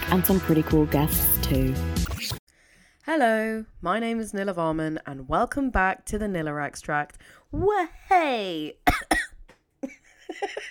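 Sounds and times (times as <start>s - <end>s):
speech: 0.1s - 1.9s, 3.1s - 9.2s, 9.8s - 10.6s
person with hay fever coughing: 8.9s - 9.4s.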